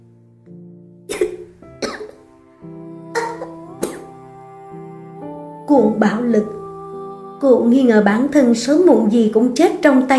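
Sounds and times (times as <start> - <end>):
soft sustained musical background: 0.0 - 10.1
woman dry coughing from a burning, irritated throat: 1.1 - 2.2
speech: 5.7 - 6.6, 7.4 - 10.1.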